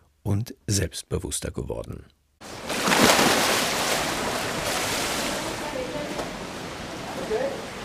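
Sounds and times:
speech: 0:00.2 - 0:02.2
water splashing and sloshing in an indoor swimming pool: 0:02.4 - 0:07.8.

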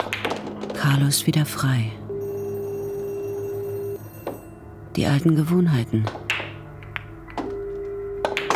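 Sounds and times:
speech: 0:00.8 - 0:02.0, 0:05.0 - 0:06.2
telephone in an inn ringing with a steady electronic tone: 0:02.1 - 0:04.6, 0:07.4 - 0:08.5.

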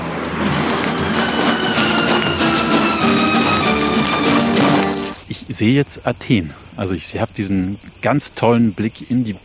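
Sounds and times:
car driving by with engine roar and tire noise: 0:00.0 - 0:05.2
speech: 0:05.6 - 0:09.4.

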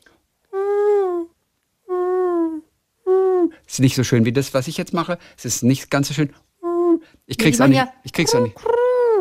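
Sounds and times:
voice imitating pigeon cooing: 0:00.5 - 0:03.6, 0:06.6 - 0:09.1
speech: 0:03.7 - 0:06.5, 0:07.3 - 0:08.8.

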